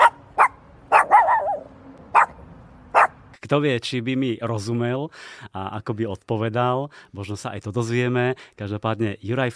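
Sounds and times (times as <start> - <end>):
dog's drawn-out whining yelp: 0.0 - 2.4
dog barking: 0.0 - 3.2
speech: 3.5 - 9.5.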